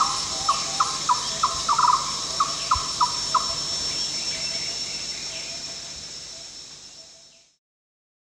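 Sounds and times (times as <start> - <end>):
yellow-crowned barbet calling at Danum: 0.0 - 5.8
high insect drone: 0.0 - 7.6.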